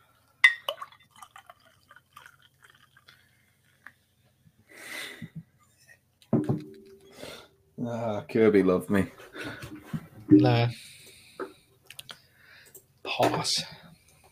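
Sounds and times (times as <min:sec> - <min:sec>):
bottles knocking: 0:00.4 - 0:00.8, 0:06.3 - 0:07.2
glass clinking: 0:00.4 - 0:01.6
beer being poured into a glass, fizzing: 0:00.5 - 0:04.0
speech: 0:07.8 - 0:09.2, 0:10.3 - 0:10.9, 0:13.2 - 0:13.8.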